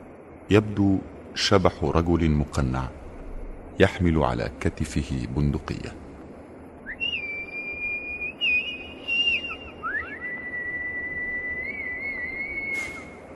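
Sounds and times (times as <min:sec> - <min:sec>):
low hiss: 0:00.0 - 0:13.3
speech: 0:00.5 - 0:03.0, 0:03.8 - 0:06.0
faint thin whistle as a signal call on a deserted shore: 0:06.8 - 0:13.2.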